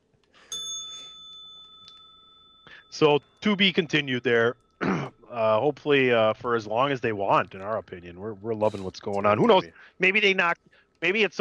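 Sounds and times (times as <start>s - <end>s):
bell struck with a bright metallic ring: 0.5s - 4.6s
speech: 2.9s - 11.3s.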